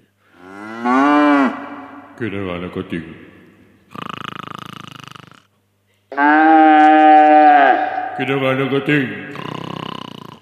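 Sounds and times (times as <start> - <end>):
ox mooing: 0.4 - 2.0, 6.1 - 8.3, 9.2 - 10.4
speech: 2.2 - 4.0, 8.2 - 9.6.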